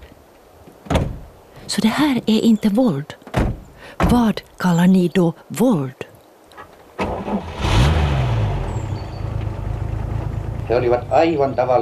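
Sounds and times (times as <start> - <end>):
speech: 1.7 - 3.2, 3.9 - 6.0, 10.7 - 11.8
car engine cranking, catching and idling: 7.0 - 11.8.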